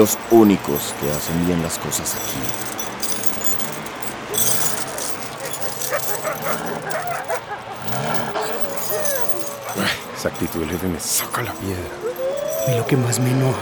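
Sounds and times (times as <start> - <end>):
speech: 0.0 - 2.8, 10.2 - 12.1, 12.7 - 13.6
brief metallic jingle: 0.0 - 13.6
steady noisy background: 0.0 - 13.6
wolves yelping and whimpering: 4.3 - 13.6.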